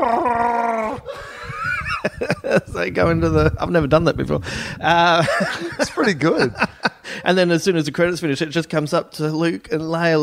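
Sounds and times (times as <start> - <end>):
person loudly imitating a Wookiee roar: 0.0 - 1.1
laughter: 1.1 - 3.5, 4.9 - 7.4
speech: 2.0 - 10.2.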